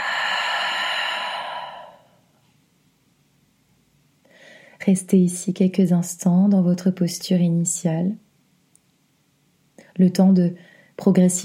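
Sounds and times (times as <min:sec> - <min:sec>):
deep breath exhaled slowly during a guided relaxation exercise: 0:00.0 - 0:02.2
faint breath: 0:00.0 - 0:02.2, 0:04.2 - 0:04.8, 0:10.6 - 0:11.0
speech: 0:04.8 - 0:08.2, 0:10.0 - 0:11.4.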